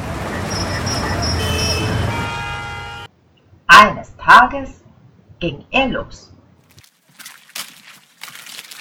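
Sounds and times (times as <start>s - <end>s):
busy big-city street traffic roar of engines and tires: 0.0s - 3.7s
sustained horn-like tones: 0.4s - 3.1s
speech: 3.8s - 6.3s.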